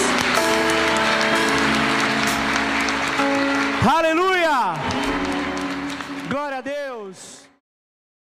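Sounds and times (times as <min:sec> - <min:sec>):
sustained musical tones like organ or keyboard chords: 0:00.0 - 0:07.0
audience applauding: 0:00.0 - 0:07.5.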